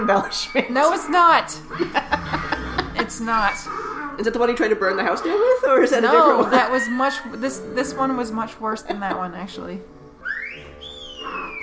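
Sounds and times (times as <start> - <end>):
speech: 0.1 - 2.4, 3.0 - 9.9
laughter: 1.7 - 3.5, 8.6 - 9.4
person whistling one long swooping note: 10.2 - 11.6.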